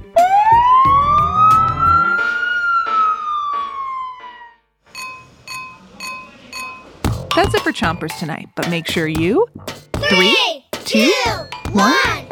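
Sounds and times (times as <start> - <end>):
fire truck siren wailing: 0.0 - 4.7
speech: 7.7 - 12.3.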